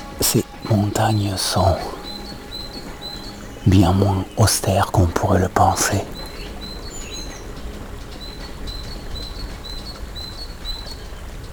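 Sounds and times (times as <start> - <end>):
birds chirping in a mountain forest: 0.0 - 11.5
steady outdoor ambience in a mountain forest at nearly 1,300 metres altitude: 0.0 - 11.5
speech: 0.2 - 2.0, 3.6 - 6.2.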